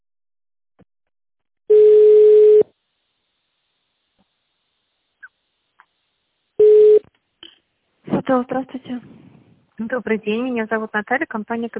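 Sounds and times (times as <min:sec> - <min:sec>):
telephone ringback tone while a call connects to a secretary: 0:01.7 - 0:02.6, 0:06.6 - 0:07.0
speech: 0:08.3 - 0:09.1, 0:09.8 - 0:11.7.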